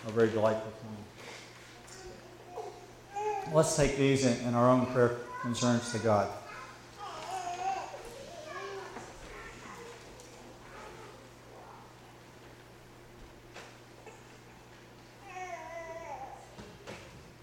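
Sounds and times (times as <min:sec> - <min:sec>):
speech: 0:00.0 - 0:01.4, 0:03.4 - 0:06.4
young children babbling and chattering in a room: 0:01.9 - 0:03.6, 0:04.8 - 0:12.0, 0:15.2 - 0:16.6.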